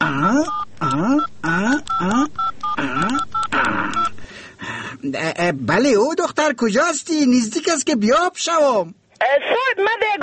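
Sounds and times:
wavering voice-like sounds: 0:00.0 - 0:04.1
phone keypad dialing tones: 0:00.1 - 0:04.2
speech: 0:00.4 - 0:01.3, 0:05.5 - 0:10.2.

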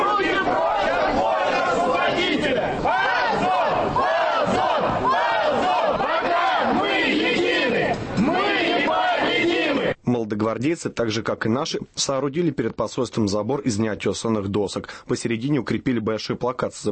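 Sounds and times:
dense crowd of protesters shouting and chanting: 0:00.0 - 0:10.0
speech: 0:10.4 - 0:16.8.

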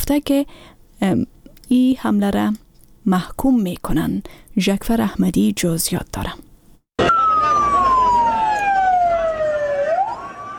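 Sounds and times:
speech: 0:00.1 - 0:06.5
ambulance siren carrying the wounded to hospitals after a university attack in Pakistan: 0:07.0 - 0:10.5.

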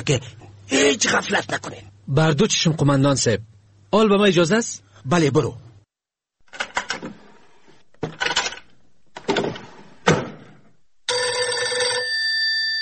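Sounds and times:
speech: 0:00.0 - 0:05.7
clattering knocks and handling noises: 0:06.4 - 0:10.6
telephone ringing with an incoming call: 0:11.1 - 0:12.8.

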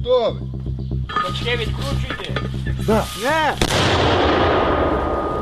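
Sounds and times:
speech: 0:00.1 - 0:00.6, 0:01.2 - 0:05.1
mortar launch blast: 0:03.6 - 0:05.3.

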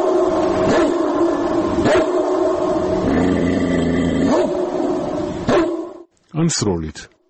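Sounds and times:
recorded dogs barking played from an MP3 player through amplifiers: 0:00.0 - 0:03.0, 0:04.2 - 0:06.1
recorded dogs growling and whining played from an MP3 player: 0:00.0 - 0:05.7
speech: 0:06.4 - 0:07.2.

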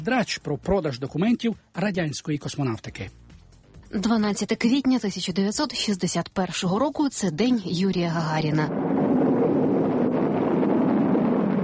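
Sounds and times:
speech: 0:00.0 - 0:03.2, 0:03.9 - 0:09.0
spacecraft rocket lifting off: 0:08.1 - 0:11.6.

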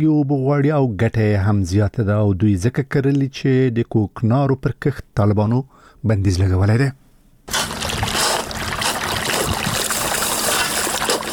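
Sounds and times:
speech: 0:00.0 - 0:07.6
irrigation water from a solar-powered pump rushing onto a farm field: 0:07.5 - 0:11.3.

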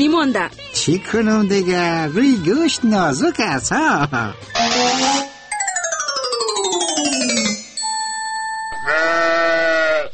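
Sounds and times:
speech: 0:00.0 - 0:05.3
bell-like ringing tone: 0:05.4 - 0:09.4
sheep bleating: 0:08.8 - 0:10.1.

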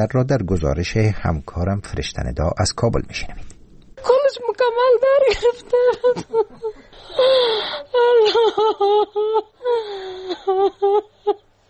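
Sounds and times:
speech: 0:00.0 - 0:03.5, 0:04.3 - 0:11.4
woman sobbing and wailing, a mother grieving daughters killed in a car bombing in Kabul: 0:04.1 - 0:11.6.

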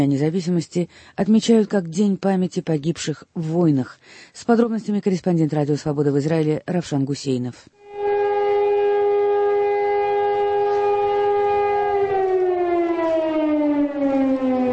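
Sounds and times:
speech: 0:00.0 - 0:07.8
air-raid siren wailing on Memorial Day: 0:07.8 - 0:14.7.

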